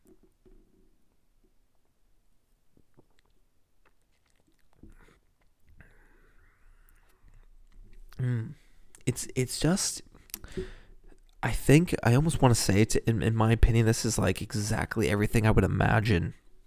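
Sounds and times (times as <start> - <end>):
person gulping: 2.8 - 8.8
person sipping a drink: 2.8 - 9.0
speech: 8.5 - 10.8, 11.4 - 16.4.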